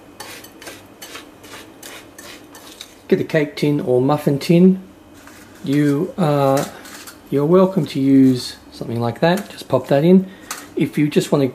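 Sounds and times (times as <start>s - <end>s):
spoon scraping around a bowl mixing melted butter into crushed biscuits: 0.2s - 3.0s, 5.1s - 7.2s
speech: 3.1s - 4.9s, 5.6s - 11.5s.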